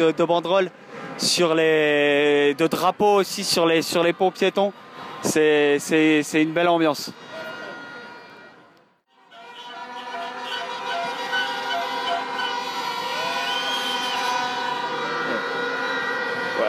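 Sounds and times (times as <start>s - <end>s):
speech: 0.0s - 7.3s
street noise: 0.0s - 16.6s
many car horns honking in celebration: 6.7s - 16.6s.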